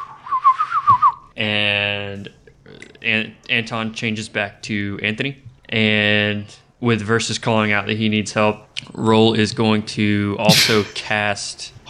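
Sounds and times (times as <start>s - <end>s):
person whistling a quick run of short bright notes: 0.0s - 1.3s
speech: 1.4s - 2.4s, 3.0s - 11.8s.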